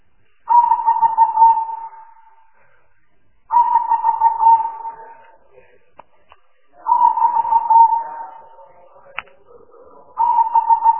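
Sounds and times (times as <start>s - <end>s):
spotted dove cooing with rough throaty phrases: 0.5s - 2.3s, 3.5s - 5.4s, 6.8s - 8.8s, 9.8s - 10.9s.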